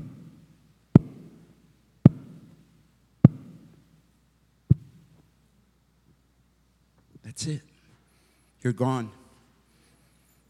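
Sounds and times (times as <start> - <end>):
heartbeat sound effect thumps: 1.0 - 1.4, 2.1 - 2.5, 3.2 - 3.8, 4.7 - 5.0
speech: 7.4 - 7.7, 8.6 - 9.2.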